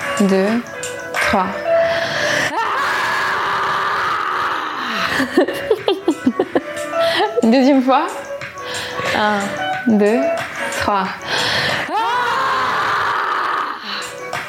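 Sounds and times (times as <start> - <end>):
speech: 0.2 - 0.7, 1.3 - 1.6, 5.2 - 5.8, 7.2 - 8.2, 9.1 - 11.3
person inhaling: 1.8 - 2.5, 6.9 - 7.4, 8.6 - 9.1, 11.2 - 11.9, 13.8 - 14.3
several people screaming together on a count of three: 2.5 - 5.1, 11.9 - 14.0
people laughing: 5.1 - 6.7.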